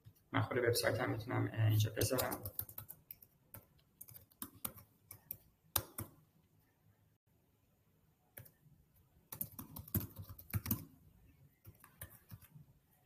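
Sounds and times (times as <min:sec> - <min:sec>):
speech: 0:00.4 - 0:02.7
computer keyboard typing: 0:01.9 - 0:06.2, 0:08.3 - 0:08.6, 0:09.3 - 0:13.0.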